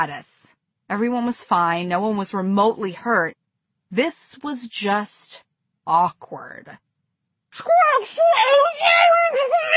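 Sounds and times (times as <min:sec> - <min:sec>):
speech: 0:00.0 - 0:06.9, 0:07.5 - 0:09.7
woman screaming in high-pitched wavering wails: 0:07.7 - 0:09.7.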